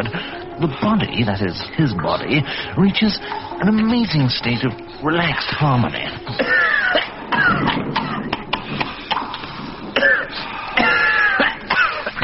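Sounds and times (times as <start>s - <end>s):
speech: 0.0s - 7.8s
harsh rasping coughs: 6.4s - 9.3s, 9.9s - 12.2s.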